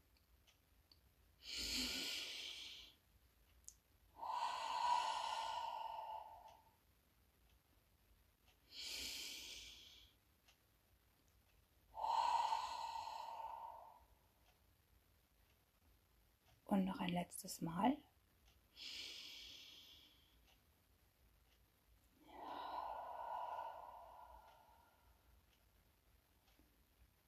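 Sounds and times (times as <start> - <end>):
slow deep breathing in and out during a mindfulness exercise: 1.4 - 3.1, 4.1 - 6.8, 8.6 - 10.2, 11.9 - 14.5, 18.4 - 20.6, 22.1 - 25.6
speech: 16.7 - 18.1.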